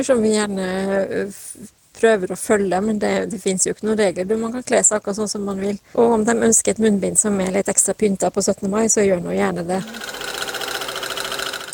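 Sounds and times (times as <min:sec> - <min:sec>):
speech: 0:00.0 - 0:10.4
sewing machine running: 0:09.8 - 0:11.7.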